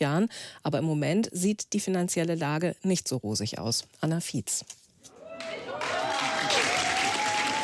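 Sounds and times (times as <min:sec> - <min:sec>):
speech: 0:00.0 - 0:04.8
thunderous applause from a theatre audience: 0:05.3 - 0:07.6.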